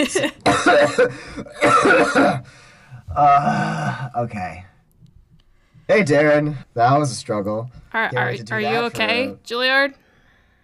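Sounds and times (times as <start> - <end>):
speech: 0.0 - 4.7, 5.9 - 10.0
voice imitating harsh wet coughing and hacking: 0.4 - 2.4.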